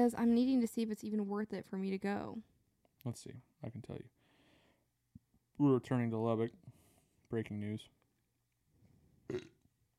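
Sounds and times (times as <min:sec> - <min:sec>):
speech: 0:00.0 - 0:04.2, 0:05.6 - 0:08.0, 0:09.3 - 0:09.6
person burping: 0:09.3 - 0:09.6.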